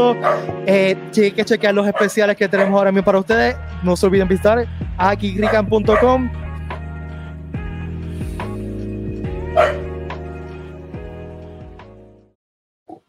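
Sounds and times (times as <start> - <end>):
speech: 0.0 - 6.4
dog barking and yipping in short insistent bursts: 0.2 - 0.5, 1.9 - 2.9, 5.4 - 6.3, 9.5 - 10.0.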